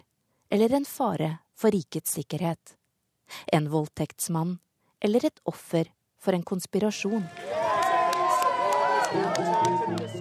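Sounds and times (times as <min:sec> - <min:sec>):
speech: 0:00.5 - 0:07.6, 0:09.1 - 0:10.2
crowd of supporters cheering and shouting outside an embassy: 0:07.1 - 0:10.2
supporters clapping: 0:07.1 - 0:10.2.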